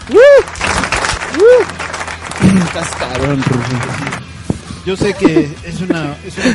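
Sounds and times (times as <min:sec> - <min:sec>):
cheering whoops from voices: 0:00.0 - 0:01.8
steady crowd applause: 0:00.0 - 0:04.3
speech: 0:00.1 - 0:00.6, 0:02.7 - 0:04.2, 0:04.8 - 0:06.5.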